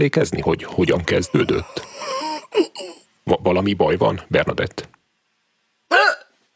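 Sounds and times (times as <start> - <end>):
speech: 0.0 - 1.9, 3.4 - 5.0
person hiccuping: 1.0 - 3.1, 5.9 - 6.3.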